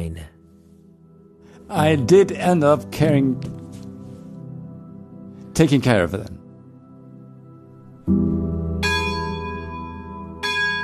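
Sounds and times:
speech: 1.7s - 3.6s, 5.6s - 6.4s
monastery church bells ringing for conventual mass: 8.7s - 10.8s.

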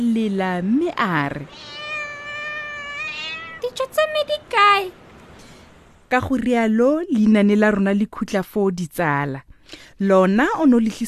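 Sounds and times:
speech: 0.0s - 1.8s, 3.7s - 5.0s, 6.1s - 11.0s
cat meowing: 1.4s - 3.8s.

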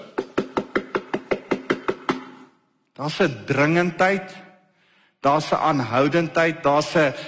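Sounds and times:
firm knocks on a door: 0.2s - 2.4s
speech: 3.0s - 4.4s, 5.2s - 7.2s.

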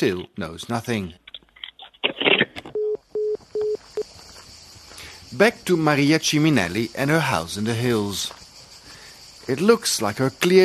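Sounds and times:
speech: 0.0s - 1.2s, 5.3s - 8.4s, 9.5s - 10.6s
short telephone ringing beeps on the line: 2.7s - 3.8s.

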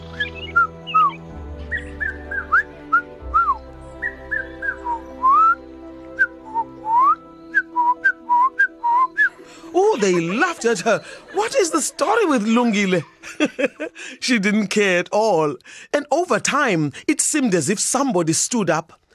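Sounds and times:
person whistling imitating birdsong: 0.1s - 5.6s, 6.2s - 9.4s
laughter: 9.2s - 14.8s
speech: 10.0s - 19.0s.

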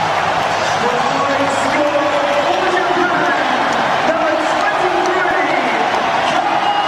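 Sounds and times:
stadium crowd roaring at a Rugby World Cup match: 0.0s - 6.8s.

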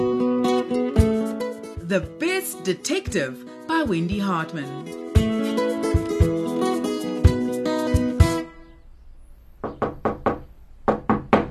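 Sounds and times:
music: 0.0s - 8.8s
speech: 1.9s - 5.0s
knocking on a front door: 9.6s - 11.4s.

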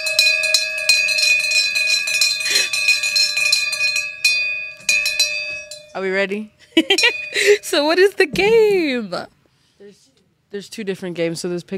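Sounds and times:
small handheld bell ringing: 0.0s - 8.1s
speech: 6.0s - 11.7s.

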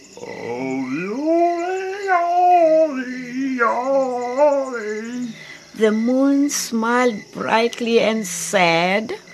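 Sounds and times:
voice imitating a hyena howling: 0.2s - 5.4s
speech: 5.8s - 9.2s.

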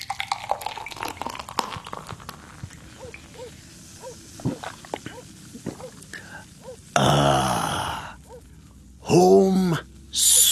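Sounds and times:
beer pouring into a glass: 0.0s - 3.3s
low grunts: 4.5s - 8.4s
speech: 9.2s - 9.4s.

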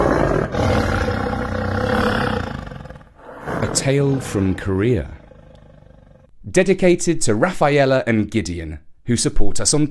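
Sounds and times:
tiger roaring: 0.0s - 6.3s
speech: 3.9s - 5.2s, 6.6s - 9.8s.

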